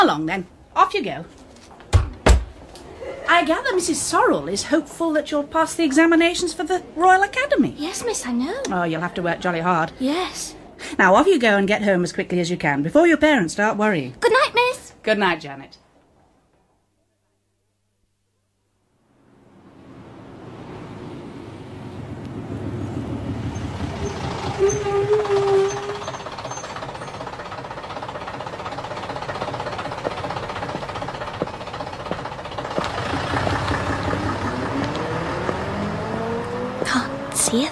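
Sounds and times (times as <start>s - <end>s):
speech: 0.0s - 1.4s, 3.3s - 15.8s
bus engine rumbling and droning in fog: 19.5s - 37.7s.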